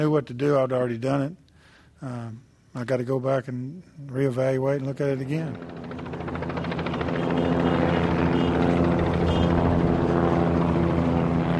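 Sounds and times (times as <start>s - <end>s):
speech: 0.0s - 1.4s, 2.0s - 5.9s
helicopters circling overhead over ballpark in Arlington: 4.7s - 11.5s
plane engine hum circling overhead: 4.9s - 11.5s.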